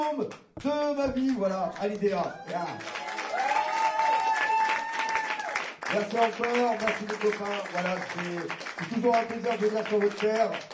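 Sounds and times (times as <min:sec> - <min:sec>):
speech: 0:00.0 - 0:03.0, 0:05.9 - 0:10.7
audience applauding at a concert: 0:01.2 - 0:10.7.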